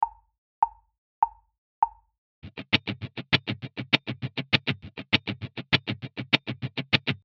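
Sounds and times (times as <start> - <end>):
funk guitar accenting sixteenth-note mutes: 2.4 - 7.2.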